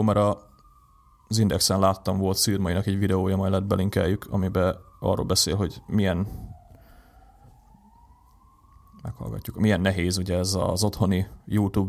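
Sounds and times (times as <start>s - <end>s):
speech: 0.0s - 0.5s, 1.3s - 6.5s, 9.0s - 11.8s
ambulance siren wailing outside: 0.0s - 11.8s.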